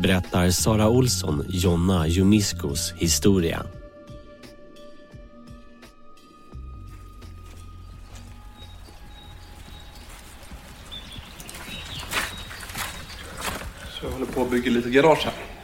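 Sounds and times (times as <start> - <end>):
speech: 0.0 - 3.8, 14.6 - 15.4
faint bird calls: 7.6 - 14.6
steady rain falling on surfaces: 8.1 - 15.6.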